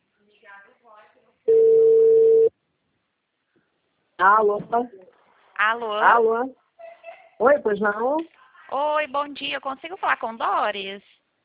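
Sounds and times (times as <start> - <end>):
ringback tone on a mobile phone call: 1.5 - 2.5
speech: 4.2 - 6.6, 7.4 - 11.2.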